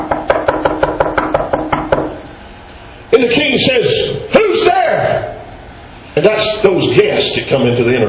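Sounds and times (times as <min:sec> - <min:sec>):
rapid firm knocking on a door: 0:00.0 - 0:02.2
speech: 0:03.2 - 0:04.7, 0:06.2 - 0:08.0.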